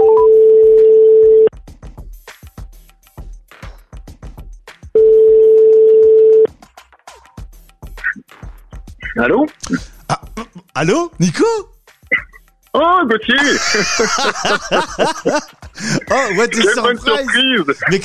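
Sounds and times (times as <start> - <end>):
telephone ringback tone from a live call to near Lyon: 0.0 - 1.5, 5.0 - 6.5
speech: 9.2 - 9.9, 10.8 - 11.7, 12.7 - 18.0
laughter: 13.3 - 18.0.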